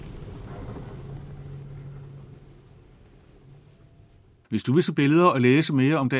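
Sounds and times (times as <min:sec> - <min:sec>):
car engine droning: 0:00.0 - 0:04.5
speech: 0:04.5 - 0:06.1.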